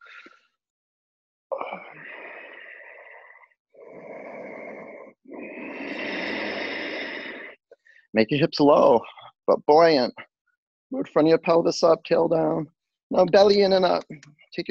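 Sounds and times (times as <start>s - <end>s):
yoga breathing drawn slowly through the throat: 1.7s - 8.1s
speech: 8.2s - 10.2s, 10.9s - 14.6s.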